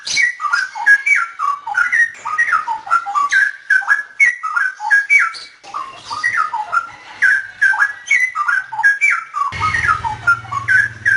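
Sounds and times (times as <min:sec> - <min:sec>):
straw-headed bulbul fluty whistled song: 0:00.0 - 0:11.1
steady low hum: 0:09.6 - 0:11.1.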